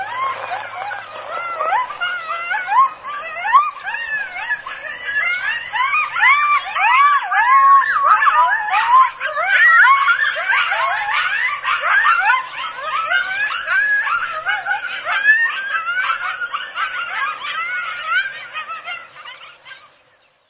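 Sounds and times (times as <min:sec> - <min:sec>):
coyote pack yipping in chorus: 0:00.0 - 0:20.4.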